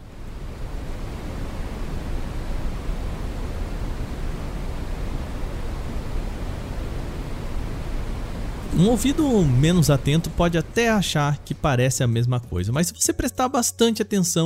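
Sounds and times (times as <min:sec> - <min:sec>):
steady brown noise: 0:00.0 - 0:14.4
speech: 0:08.8 - 0:14.4.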